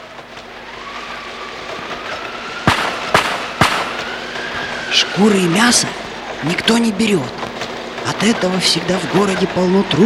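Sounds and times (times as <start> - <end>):
double-barreled shotgun blasts: 2.6 - 4.4
steady rumbling background: 2.6 - 9.7
speech: 5.0 - 7.4, 8.1 - 10.0.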